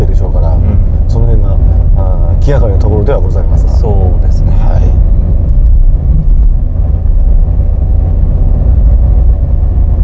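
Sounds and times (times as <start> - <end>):
car driving fast along a riverside road beside the Asano River: 0.0 - 10.0
speech: 2.5 - 4.8.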